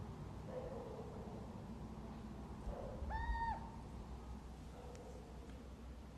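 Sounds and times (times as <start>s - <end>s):
low rumbling background noise: 0.0s - 6.1s
little owl calling: 3.0s - 3.8s.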